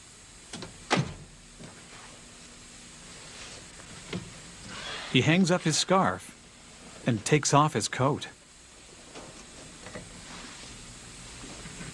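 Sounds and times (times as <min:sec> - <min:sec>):
front door clicking and thudding as opened and shut: 0:00.5 - 0:01.3, 0:04.6 - 0:05.2
speech: 0:05.1 - 0:06.3, 0:07.1 - 0:08.4.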